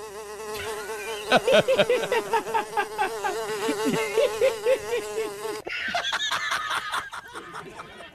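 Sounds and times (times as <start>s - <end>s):
flies' wings buzzing: 0.0s - 5.6s
laughter: 0.6s - 8.1s.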